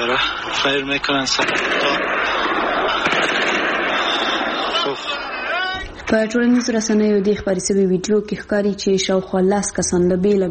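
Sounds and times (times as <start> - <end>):
speech: 0.0 - 2.2, 4.9 - 5.4, 6.1 - 10.4
laughter: 0.0 - 7.2
Kalashnikov rifle fire aimed at the Buddha statues in Bamiyan: 1.3 - 6.6.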